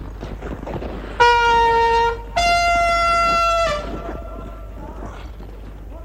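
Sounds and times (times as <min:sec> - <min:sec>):
brassy horn blasts: 0:01.2 - 0:05.0.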